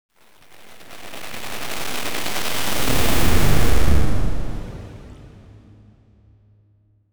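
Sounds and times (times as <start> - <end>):
glitch sound effect: 0.2 - 5.1.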